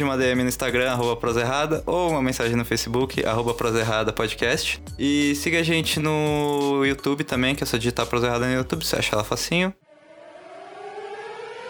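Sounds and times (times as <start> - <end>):
speech: 0.0 - 9.8
siren wailing with rising pitch: 9.8 - 11.6.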